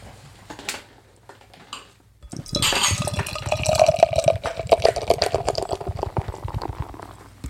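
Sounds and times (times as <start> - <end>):
faint clinks of a glass: 2.2 - 4.2
beer poured from a can into a glass: 2.2 - 7.4.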